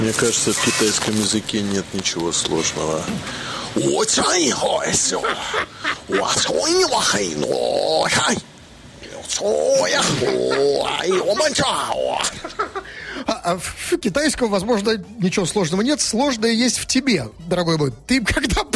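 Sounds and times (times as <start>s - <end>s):
speech: 0.1s - 8.5s, 9.3s - 18.7s
laughter: 4.8s - 6.5s, 9.9s - 13.4s
man imitating a lion roar: 7.3s - 8.4s, 9.1s - 12.4s.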